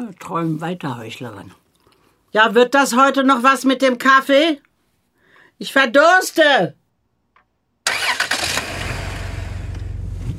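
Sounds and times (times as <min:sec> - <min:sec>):
speech: 0:00.0 - 0:01.6, 0:02.3 - 0:04.7, 0:05.6 - 0:06.8
car engine cranking, starting and idling: 0:07.9 - 0:10.3.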